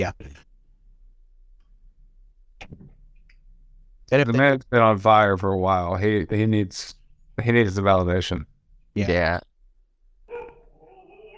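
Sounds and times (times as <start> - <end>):
speech: 0.0 - 0.4, 4.1 - 9.5
dog barking: 10.3 - 11.3.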